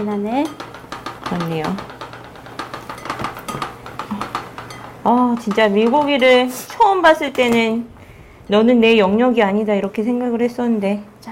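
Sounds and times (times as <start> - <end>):
speech: 0.0 - 0.6, 1.3 - 1.9, 5.0 - 7.9, 8.5 - 11.1
ceramic bowls and dishes clinking and clattering: 0.0 - 7.8
low hum: 0.0 - 11.2.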